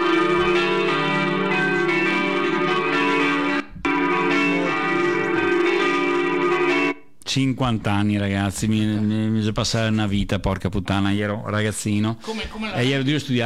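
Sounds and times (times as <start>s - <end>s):
church bells ringing: 0.0s - 7.1s
speech: 7.4s - 13.4s.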